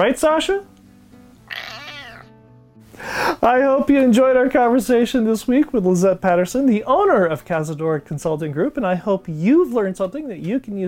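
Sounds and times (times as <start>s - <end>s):
speech: 0.0s - 0.7s, 3.0s - 10.8s
single drawn-out cat meow: 1.4s - 2.4s.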